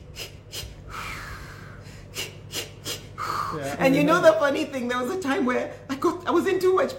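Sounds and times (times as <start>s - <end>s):
person imitating rapid panicked hyperventilating: 0.0s - 3.8s
speech: 3.5s - 6.9s.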